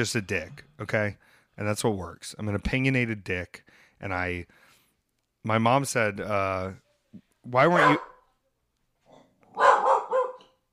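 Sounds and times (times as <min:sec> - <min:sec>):
speech: 0:00.0 - 0:04.6, 0:05.4 - 0:08.1
pet guard dog barking: 0:07.7 - 0:08.2, 0:09.5 - 0:10.6.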